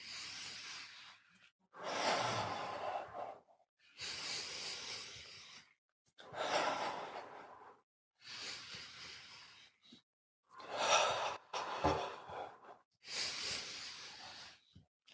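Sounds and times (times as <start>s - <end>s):
slow deep breathing during a breathing exercise: 0.0s - 10.0s, 10.6s - 14.8s.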